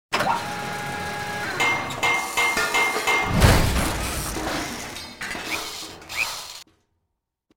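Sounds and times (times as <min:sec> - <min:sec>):
ship repair work: 0:00.1 - 0:06.7.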